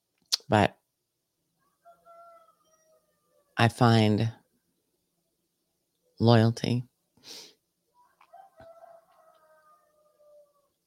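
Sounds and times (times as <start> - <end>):
speech: 0.5 - 0.8, 3.6 - 4.4, 6.2 - 7.5
rooster crowing in a long strained cry: 1.6 - 3.6, 7.9 - 10.8.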